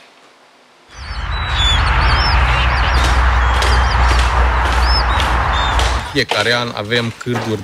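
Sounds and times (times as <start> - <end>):
steady windy outdoor rumble: 0.9 - 6.2
flock of flamingos honking and squawking on a lake shore: 1.0 - 6.2
speech: 6.1 - 7.6.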